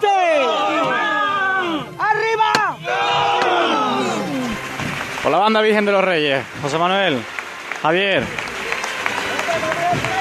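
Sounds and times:
murmuring voices: 0.0s - 10.1s
large crowd applauding outdoors in a square: 2.8s - 10.1s
speech: 5.4s - 8.5s.

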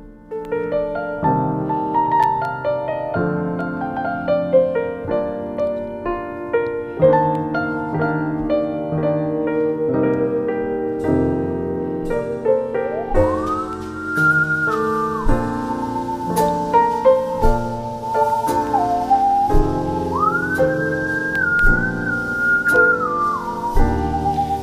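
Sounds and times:
steady instrumental accompaniment: 0.0s - 24.6s
wood-cutting saw played as an instrument, slow eerie melody: 7.4s - 24.6s.

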